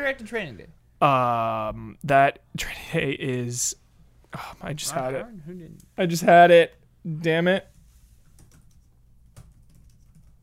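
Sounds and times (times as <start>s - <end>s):
speech: 0.0s - 7.7s
low steady hum: 0.0s - 10.4s
typing on a computer keyboard: 8.3s - 10.4s.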